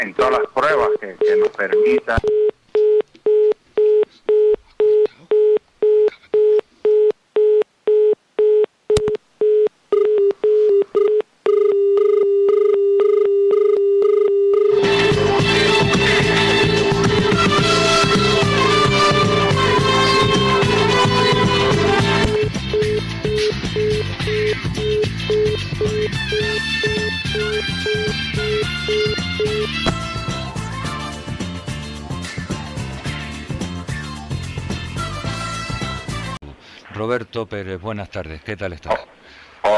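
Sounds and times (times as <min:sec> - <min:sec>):
speech: 0:00.1 - 0:02.4, 0:38.5 - 0:38.9
telephone busy signal: 0:01.2 - 0:14.8, 0:22.3 - 0:29.7
loud music: 0:14.8 - 0:36.4.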